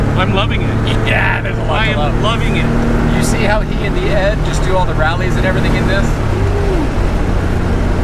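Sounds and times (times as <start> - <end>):
1986 sports car with stock 3.2 engine accelerating: 0.0 - 8.0
speech: 0.2 - 7.0
falling whine: 5.9 - 7.6.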